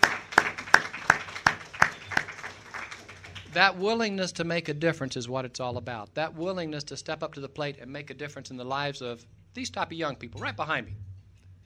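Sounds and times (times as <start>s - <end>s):
audience applause at a gathering honoring retired teachers: 0.0s - 3.7s
speech: 3.6s - 11.0s.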